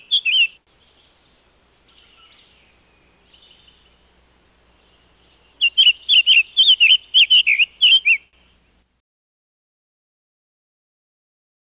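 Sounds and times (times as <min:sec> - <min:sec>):
summer tanager song of slurred warbled whistles: 0:00.0 - 0:00.6, 0:05.6 - 0:08.3.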